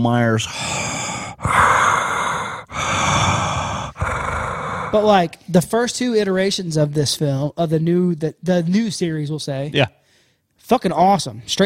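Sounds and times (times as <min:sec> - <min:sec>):
speech: 0:00.0 - 0:01.0, 0:04.9 - 0:10.0, 0:10.6 - 0:11.6
voice imitating heavy breathing: 0:00.4 - 0:05.4.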